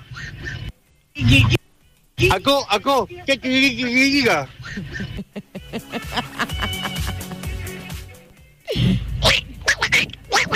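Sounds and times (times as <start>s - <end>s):
speech: 1.2s - 1.6s, 2.2s - 6.4s
laughter: 4.4s - 8.3s
raspy buzzy cartoon duck voice squawking: 9.2s - 10.5s.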